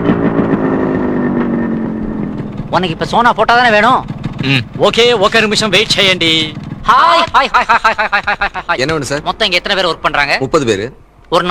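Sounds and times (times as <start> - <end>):
motorcycle engine idling after coming to a stop: 0.1 - 10.0
speech: 2.8 - 11.4
laughter: 7.1 - 9.2.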